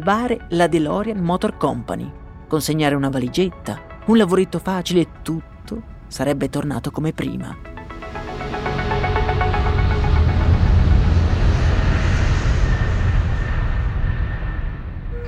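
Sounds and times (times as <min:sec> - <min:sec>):
speech: 0:00.0 - 0:07.8
airplane cabin engine drone on a flight returning from Belfast: 0:08.2 - 0:15.2.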